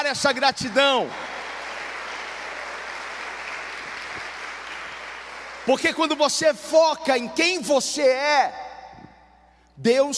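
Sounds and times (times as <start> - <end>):
speech: 0.0 - 1.4, 5.6 - 8.6, 9.8 - 10.1
congregation clapping: 0.0 - 6.4.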